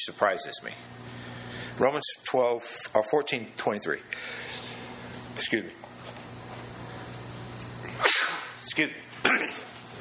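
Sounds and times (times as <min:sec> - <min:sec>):
speech: 0:00.0 - 0:01.0, 0:01.8 - 0:04.7, 0:05.4 - 0:05.8, 0:08.0 - 0:09.7
sharp sneezes: 0:08.0 - 0:08.6.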